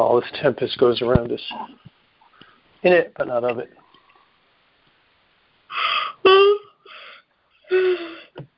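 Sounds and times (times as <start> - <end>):
speech: 0.0 - 1.8, 2.8 - 3.8
person yawning with breathy gasps and voiced sighs: 5.7 - 8.4.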